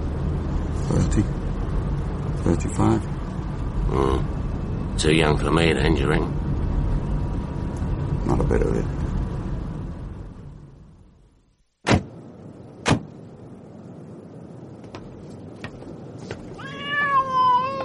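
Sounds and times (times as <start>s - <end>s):
low steady rumble: 0.0s - 17.8s
speech: 0.9s - 1.4s, 2.4s - 3.2s, 3.9s - 4.4s, 5.0s - 6.4s, 8.3s - 9.0s
cat meowing: 16.5s - 17.8s.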